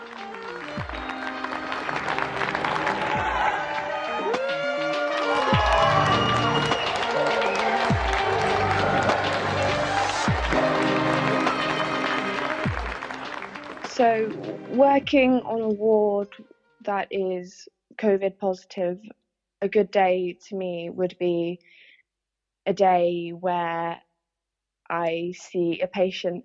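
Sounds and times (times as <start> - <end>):
crowd clapping for health workers: 0.0 - 14.7
whistles: 0.7 - 1.5, 5.5 - 8.1
speech: 14.0 - 21.7, 22.6 - 24.0, 24.9 - 26.4.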